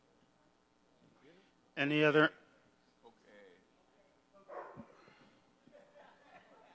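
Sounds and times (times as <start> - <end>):
speech: 1.8 - 2.4
dog barking: 4.5 - 5.0
laughter: 5.6 - 6.7.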